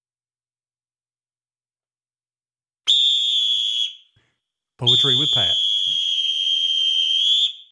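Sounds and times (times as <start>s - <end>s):
shrill whistle blast: 2.9s - 4.1s, 4.8s - 7.6s
speech: 4.8s - 6.1s.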